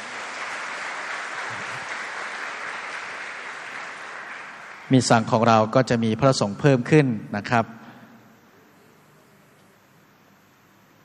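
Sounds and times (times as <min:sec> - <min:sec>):
audience applause from a large gathering: 0:00.0 - 0:05.5
speech: 0:04.9 - 0:07.8.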